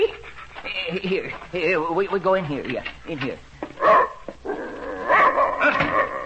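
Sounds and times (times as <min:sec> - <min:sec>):
speech: 0:00.9 - 0:04.1
German shepherd dog barking and yelping: 0:03.8 - 0:06.2.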